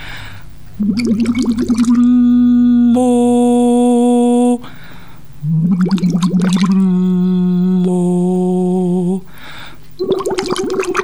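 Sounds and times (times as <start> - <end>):
rapid gurgling bubbles in water: 0.8 - 2.9, 5.4 - 7.0, 10.0 - 11.0
speech: 0.8 - 3.4
hummed voice tone through a tube submerged in water during a voice exercise: 0.8 - 4.7, 5.4 - 9.3, 10.0 - 11.0.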